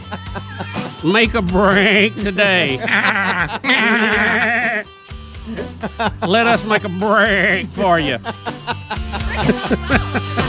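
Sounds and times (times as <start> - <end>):
laughter: 0.0 - 10.4
speech: 0.1 - 4.9, 5.5 - 8.6, 9.4 - 10.4
goat bleating: 1.7 - 4.9.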